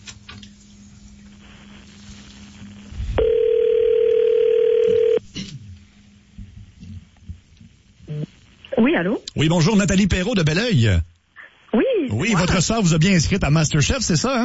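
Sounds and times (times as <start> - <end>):
faint low hum: 0.2 - 14.4
telephone dial tone on a phone line: 3.2 - 5.2
speech: 9.0 - 11.1, 12.1 - 14.4.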